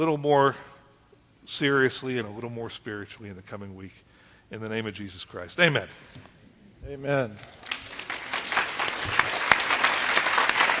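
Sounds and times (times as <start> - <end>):
speech: 0.0 - 0.7, 1.5 - 7.7
group clapping after a prayer: 7.4 - 10.7.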